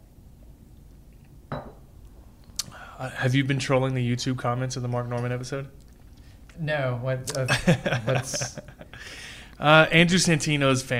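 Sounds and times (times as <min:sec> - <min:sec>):
glasses clinking as drinks are poured: 0:01.5 - 0:01.8
speech: 0:03.0 - 0:05.8, 0:06.6 - 0:10.9
laughter: 0:07.5 - 0:09.0.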